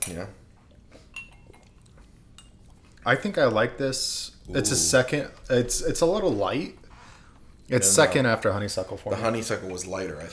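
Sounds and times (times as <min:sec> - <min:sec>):
speech: 0:00.1 - 0:00.4, 0:03.0 - 0:06.8, 0:07.7 - 0:10.3
glasses clinking together in a toast: 0:01.1 - 0:01.6.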